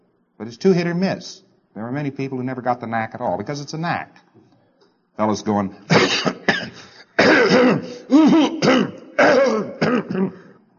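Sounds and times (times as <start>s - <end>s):
speech: 0.4s - 4.5s, 5.2s - 10.5s
man imitating a cough: 5.9s - 10.6s.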